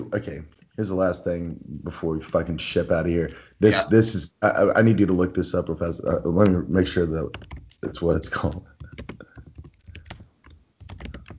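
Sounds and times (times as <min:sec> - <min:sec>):
speech: 0:00.0 - 0:08.7
rapid typing on a computer keyboard: 0:07.3 - 0:11.3.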